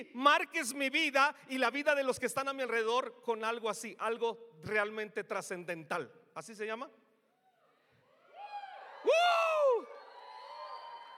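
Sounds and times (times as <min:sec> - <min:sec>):
speech: 0:00.0 - 0:07.0
audience shouting and cheering: 0:08.1 - 0:11.1.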